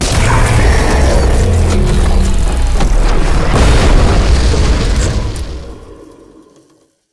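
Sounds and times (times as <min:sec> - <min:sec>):
big droid combat creature death sound: 0:00.0 - 0:06.0.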